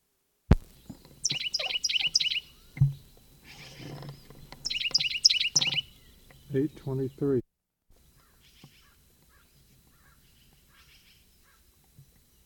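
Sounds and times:
bird chirping inside a barn: 0.6s - 7.4s, 8.0s - 12.4s
dull thump: 2.8s - 3.1s
speech: 6.5s - 7.4s.

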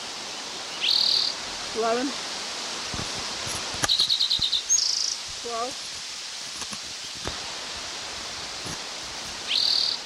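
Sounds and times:
faint hiss: 0.0s - 10.0s
high thin fluttering bird call: 0.7s - 1.4s, 3.9s - 5.2s, 9.5s - 10.0s
speech: 1.8s - 2.3s, 5.5s - 5.9s.

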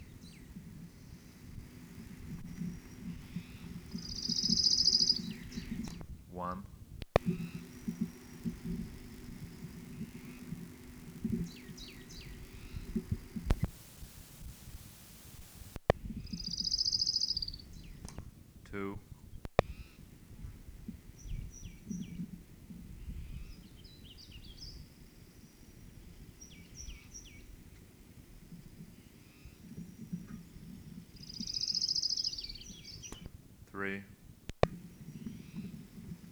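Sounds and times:
sharp clicks: 0.0s - 6.3s, 6.9s - 18.8s, 19.4s - 22.5s, 31.2s - 33.4s, 34.5s - 36.2s
low hiss: 0.0s - 36.2s
orange-crowned warbler song: 0.0s - 36.2s.

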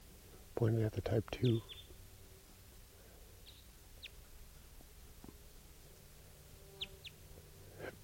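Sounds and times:
speech: 0.6s - 1.8s
wild bird high descending chirps, type 2 call variant: 1.4s - 2.0s, 3.4s - 4.2s, 6.8s - 7.2s.

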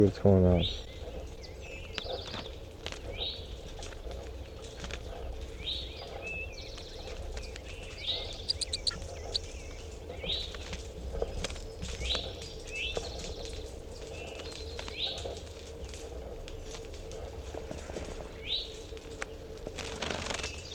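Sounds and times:
steady low hum: 0.0s - 19.8s
captive crossbill calls in a small cage: 5.8s - 10.5s.

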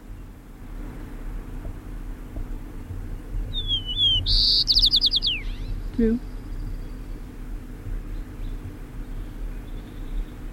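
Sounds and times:
faint low hum: 0.0s - 10.5s
white-crowned sparrow singing: 2.8s - 10.5s
speech: 4.3s - 4.5s, 6.0s - 6.3s.

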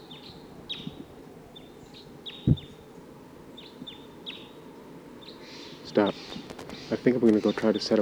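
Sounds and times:
wild bird calling with short thin high chirps: 0.0s - 8.0s
dull thump: 2.3s - 2.9s
speech: 6.0s - 6.3s, 7.0s - 8.0s.

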